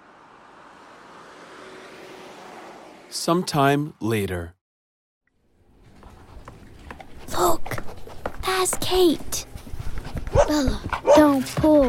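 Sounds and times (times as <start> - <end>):
taxi driving on the road: 0.0 - 3.7
speech: 3.1 - 4.6, 8.6 - 9.5, 10.4 - 11.8.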